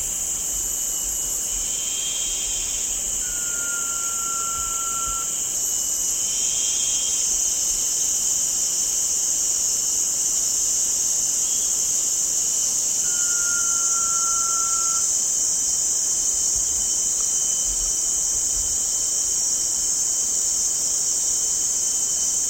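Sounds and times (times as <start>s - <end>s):
steady hiss of insects: 0.0s - 22.4s
Blue-banded pitta whistle: 3.2s - 5.3s, 13.1s - 15.1s.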